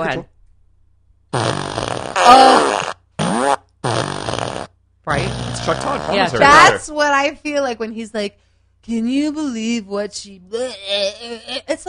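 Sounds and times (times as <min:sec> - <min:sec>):
speech: 0:00.0 - 0:00.3, 0:01.3 - 0:02.8, 0:05.6 - 0:11.8
fart machine electronic fart noises: 0:01.3 - 0:06.7.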